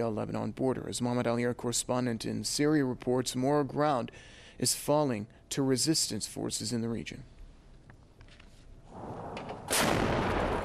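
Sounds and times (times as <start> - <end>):
speech: 0.0 - 7.4
artillery fire: 8.9 - 10.6
loud blast: 8.9 - 10.6
low rumbling: 8.9 - 10.6.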